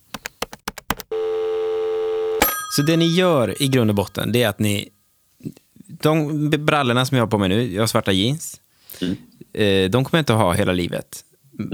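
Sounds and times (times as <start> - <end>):
loud steady telephone dial tone: 0.0 - 4.1
phone key clicks from dialing: 0.1 - 1.1
speech: 2.8 - 11.7.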